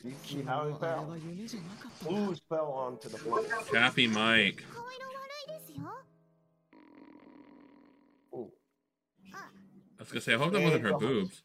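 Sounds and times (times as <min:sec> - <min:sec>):
speech: 0:00.0 - 0:06.1, 0:08.3 - 0:08.6, 0:09.2 - 0:11.4
stomach rumbling: 0:06.8 - 0:08.2.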